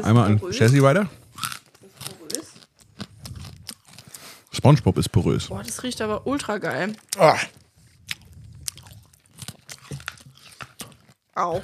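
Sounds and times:
speech: 0.0s - 1.2s, 4.6s - 7.6s, 11.4s - 11.6s
wet mastication noises: 0.5s - 11.6s
crunching and biting of hard candy: 1.3s - 4.7s, 7.0s - 11.3s.

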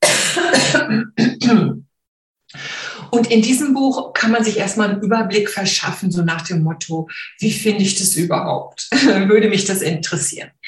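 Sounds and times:
person coughing: 0.0s - 1.8s
speech: 3.1s - 10.6s.

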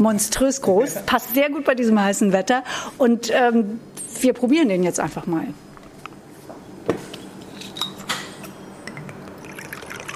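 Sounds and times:
speech: 0.0s - 5.7s
gin poured over very large ice cubes in a goblet-shaped glass: 9.3s - 10.1s.

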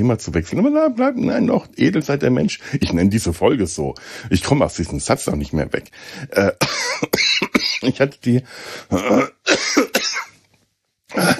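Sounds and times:
speech: 0.0s - 7.1s, 7.8s - 10.2s
person clearing throat: 6.4s - 8.1s, 8.9s - 10.4s, 11.1s - 11.3s
person coughing: 6.4s - 8.1s, 8.9s - 10.4s, 11.1s - 11.3s.

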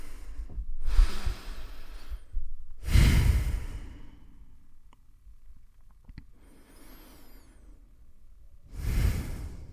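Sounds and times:
group taking deep breaths together: 0.0s - 4.6s, 6.4s - 8.0s, 8.7s - 9.7s.

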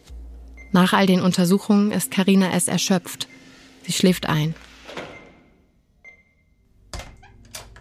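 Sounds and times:
speech: 0.7s - 4.7s
hospital automatic doors clicking and whirring: 4.6s - 7.7s.

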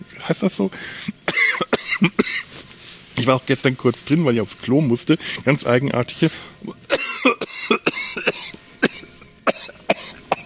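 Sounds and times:
speech: 0.3s - 2.6s, 3.2s - 6.8s
person coughing after choking on a drink: 1.3s - 2.5s, 6.9s - 10.4s.

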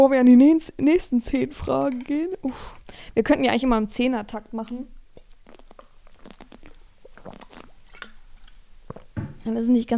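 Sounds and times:
speech: 0.0s - 5.0s, 9.5s - 9.9s
person sipping and swallowing a drink: 5.2s - 9.2s.

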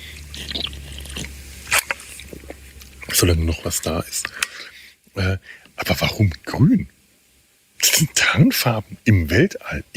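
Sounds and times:
short slurping gulp of water: 0.0s - 2.9s
soft wet mouth clicks: 0.2s - 3.0s
speech: 3.2s - 7.0s, 7.9s - 9.9s.

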